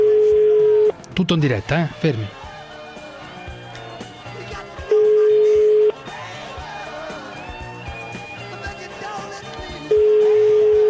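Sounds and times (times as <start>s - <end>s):
telephone ringing on the line: 0.0s - 1.0s, 4.4s - 6.1s, 7.4s - 10.8s
quieter mixed sound: 0.0s - 10.8s
speech: 1.2s - 2.4s.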